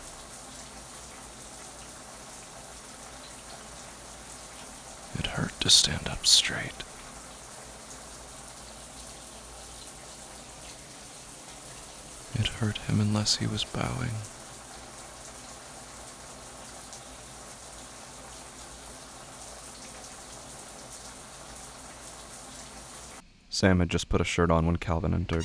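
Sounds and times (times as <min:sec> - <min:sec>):
running shower water with a man standing under it: 0:00.0 - 0:23.2
speech: 0:05.2 - 0:06.9, 0:12.4 - 0:14.4, 0:23.6 - 0:25.4.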